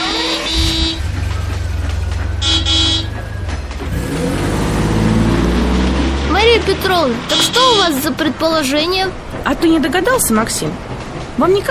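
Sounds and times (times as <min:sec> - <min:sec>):
car horn tooting in short bursts: 0:00.0 - 0:01.3, 0:02.4 - 0:03.2, 0:07.3 - 0:08.0
car engine rumbling and revving: 0:00.0 - 0:08.1
speech: 0:06.8 - 0:11.6.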